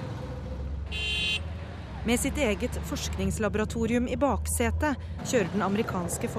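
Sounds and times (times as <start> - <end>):
auto rickshaw engine rumble in traffic: 0.0 - 6.3
horn toot: 0.9 - 1.5
speech: 2.0 - 6.3.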